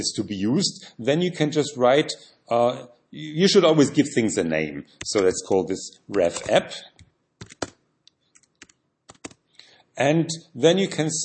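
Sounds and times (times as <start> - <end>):
speech: 0.0 - 7.0, 10.0 - 11.2
keystrokes on a computer keyboard while code is being written: 7.4 - 7.8, 8.4 - 9.4.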